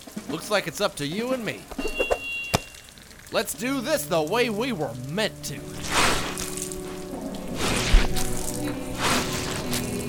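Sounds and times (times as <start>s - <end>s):
speech: 0.3s - 2.1s, 3.3s - 6.0s
shoveling wet sewage sludge: 5.5s - 10.0s.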